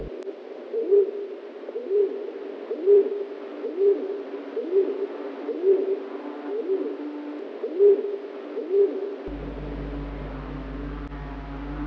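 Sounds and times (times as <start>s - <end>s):
low steady hum: 0.0s - 0.2s, 9.3s - 11.8s
dove cooing: 0.0s - 11.8s.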